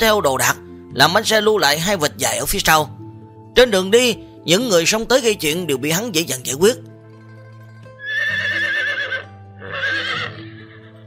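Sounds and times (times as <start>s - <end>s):
speech: 0.0s - 3.0s, 3.6s - 6.9s
horse neighing while pulling a cart: 8.0s - 11.0s.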